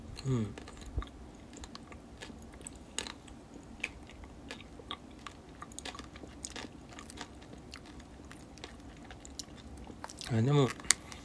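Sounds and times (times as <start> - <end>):
speech: 0.2 - 0.7, 10.3 - 10.8
chewing ramune-flavoured popping gummy candy: 0.2 - 11.2.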